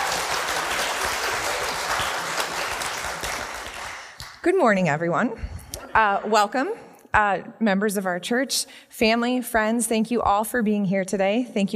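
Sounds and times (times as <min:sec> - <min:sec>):
church audience clapping: 0:00.0 - 0:04.4
speech: 0:04.4 - 0:11.7.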